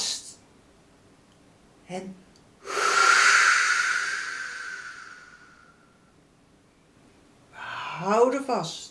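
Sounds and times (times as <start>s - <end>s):
speech: 1.9s - 2.3s, 8.0s - 8.9s
deep belly inhale during a breathing exercise: 2.6s - 5.8s.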